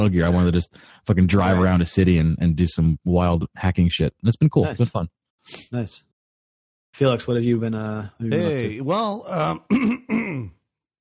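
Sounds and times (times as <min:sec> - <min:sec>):
speech: 0:00.0 - 0:06.1, 0:06.9 - 0:10.6
throat clearing: 0:09.5 - 0:10.6.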